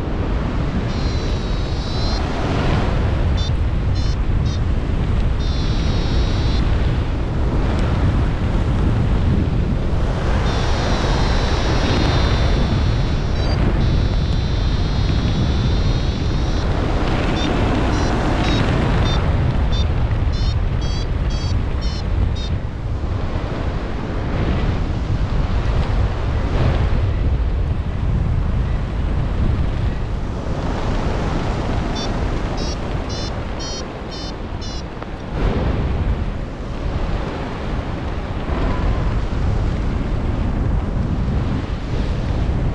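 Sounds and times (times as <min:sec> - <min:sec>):
wind buffeting the microphone outdoors by a lagoon near sunset: 0:00.0 - 0:42.7
faint high chirping: 0:00.9 - 0:02.2, 0:03.4 - 0:04.6, 0:05.4 - 0:06.6, 0:10.4 - 0:16.7, 0:17.4 - 0:22.5, 0:32.0 - 0:34.8.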